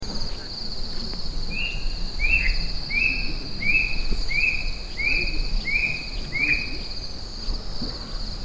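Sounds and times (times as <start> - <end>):
high insect drone: 0.0 - 8.4
unidentified bird calling at Kitanglad Lodge in the Philippines: 1.5 - 7.0.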